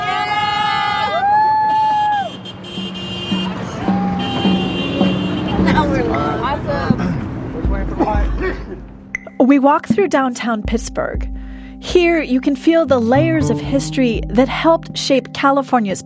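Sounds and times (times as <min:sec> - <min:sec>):
people yelling and cheering to encourage walkers: 0:00.0 - 0:02.4, 0:03.4 - 0:06.7
support car horns honking: 0:00.0 - 0:09.6
traffic rumble: 0:00.0 - 0:14.9
speech: 0:09.5 - 0:16.0.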